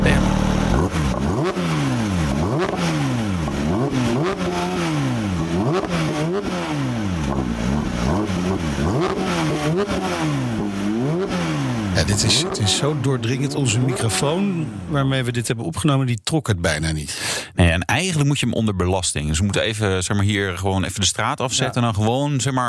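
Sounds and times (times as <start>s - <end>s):
car engine revving: 0.0s - 15.3s
speech: 12.8s - 22.6s.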